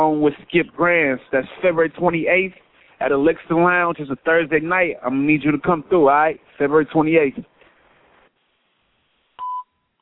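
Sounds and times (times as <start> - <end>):
faint hiss: 0.0 - 9.4
speech: 0.1 - 7.5.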